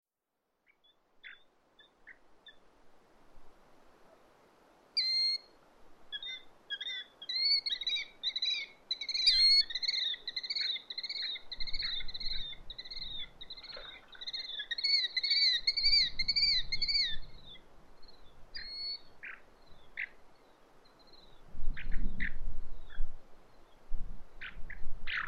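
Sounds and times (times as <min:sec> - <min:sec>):
low background noise: 0:00.2 - 0:25.2
bird chirps: 0:00.6 - 0:02.6, 0:05.0 - 0:05.5, 0:06.1 - 0:23.8
bird song with wavering buzzy notes: 0:06.1 - 0:25.2.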